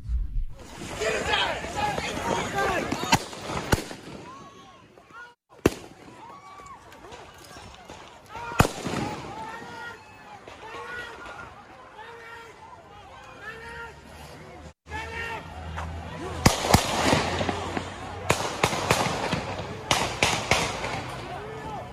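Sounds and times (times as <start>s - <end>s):
noisy street crowd in Kenosha, Wisconsin: 0.0s - 21.9s
gunshots on a city street in Kenosha, Wisconsin: 0.6s - 4.5s, 5.5s - 6.3s, 7.1s - 9.8s, 16.4s - 21.3s
people chattering: 0.6s - 21.9s
people shouting: 0.7s - 14.2s, 14.9s - 21.9s.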